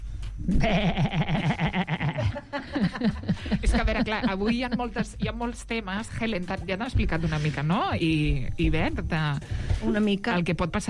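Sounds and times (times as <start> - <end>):
speech: 0.4 - 1.5, 2.8 - 10.8
human voice imitating a goat bleating: 0.4 - 2.0
laughter: 0.5 - 5.4.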